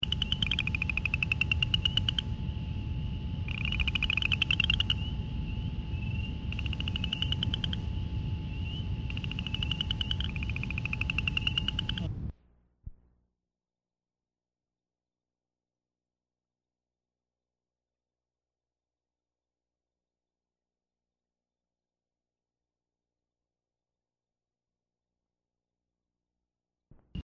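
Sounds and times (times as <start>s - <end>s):
New Jersey Chorus Frog calling: 0.0s - 2.6s, 3.4s - 12.1s.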